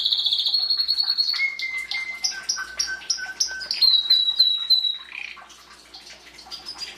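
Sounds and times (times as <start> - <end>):
canary singing: 0.0 - 5.4.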